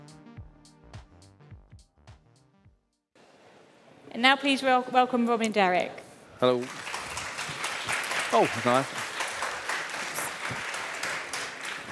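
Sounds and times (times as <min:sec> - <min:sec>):
speech: 0:04.2 - 0:06.8, 0:08.3 - 0:09.0
audience applause welcoming a speaker after a film: 0:06.4 - 0:11.9.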